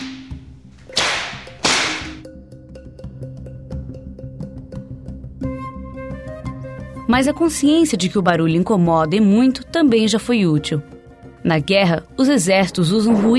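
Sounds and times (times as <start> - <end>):
whip cracks of punishment lashes: 0.0 - 2.2
speech: 7.1 - 13.3.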